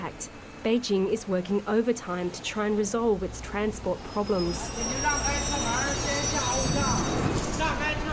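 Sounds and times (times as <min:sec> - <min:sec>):
subway train in Beijing rolling along with loud rumble: 0:00.0 - 0:08.1
speech: 0:00.2 - 0:05.8
thin high-pitched metallic whines of subway train: 0:02.9 - 0:08.1.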